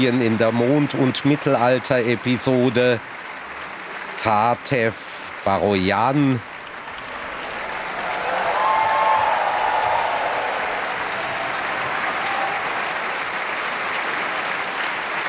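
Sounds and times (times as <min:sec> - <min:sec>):
speech: 0:00.0 - 0:03.2, 0:04.2 - 0:06.5
opera audience applauding the singers and ensemble: 0:00.0 - 0:15.2
cheers or whistles from an opera audience: 0:06.6 - 0:15.2.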